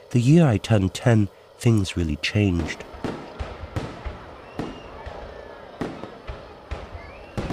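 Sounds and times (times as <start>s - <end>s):
speech: 0.1s - 2.9s
firecrackers during Tet Lunar New Year in central Vietnam: 2.5s - 7.5s
explosions during Tet 1968 in central Vietnam: 2.6s - 7.5s
gunfire during Tet 1968 in central Vietnam: 3.0s - 5.2s, 5.8s - 7.5s.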